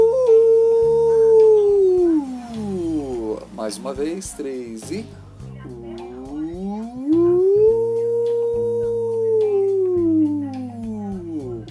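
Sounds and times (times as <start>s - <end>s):
voice holding oo vowel with pen cap in mouth: 0.0s - 3.4s, 5.8s - 11.6s
speech: 3.7s - 5.2s.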